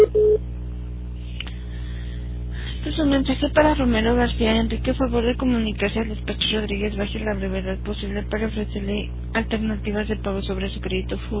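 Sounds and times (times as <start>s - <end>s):
voicemail beep before recording a message: 0.0s - 0.4s
faint low hum: 0.0s - 11.3s
speech: 3.0s - 11.3s.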